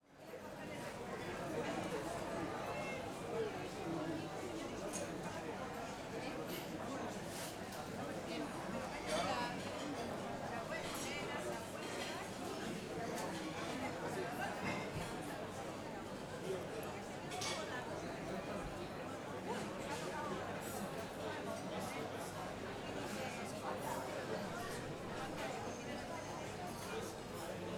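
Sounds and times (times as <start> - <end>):
busy food market in Madrid: 0.0 - 27.7.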